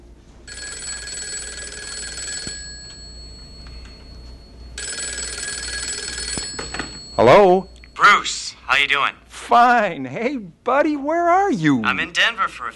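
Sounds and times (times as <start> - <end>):
low hum: 0.0 - 12.7
old-style telephone bell ringing: 0.4 - 8.0
speech: 7.2 - 12.7.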